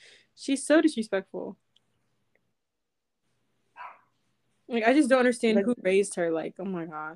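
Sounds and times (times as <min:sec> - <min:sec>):
speech: 0:00.4 - 0:01.7, 0:04.7 - 0:07.1
female dog barking: 0:03.8 - 0:04.1.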